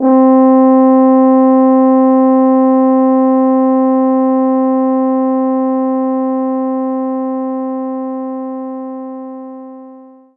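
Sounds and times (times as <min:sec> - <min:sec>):
French horn note C3 played mezzo forte: 0:00.0 - 0:10.3.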